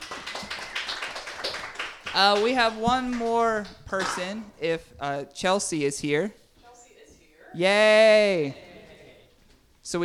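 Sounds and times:
applause from a small crowd: 0:00.0 - 0:03.3
speech: 0:02.2 - 0:06.4, 0:07.5 - 0:08.6.

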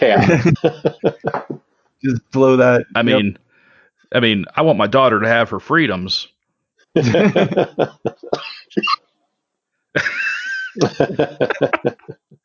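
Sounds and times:
harsh coughing with strained throaty vocalizing: 0:00.0 - 0:01.5, 0:07.0 - 0:09.0, 0:10.0 - 0:12.2
laughter: 0:00.0 - 0:03.3, 0:07.0 - 0:09.0, 0:10.0 - 0:12.3
speech: 0:00.0 - 0:03.4, 0:04.1 - 0:06.3, 0:06.9 - 0:09.0, 0:10.0 - 0:12.4.

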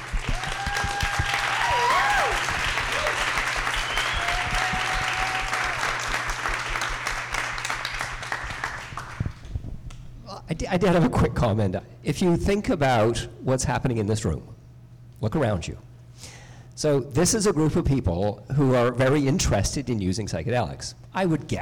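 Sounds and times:
audience applause for panelists: 0:00.0 - 0:09.4
faint whoops or whistles: 0:00.3 - 0:05.8
speech: 0:10.6 - 0:14.6, 0:15.2 - 0:21.6.

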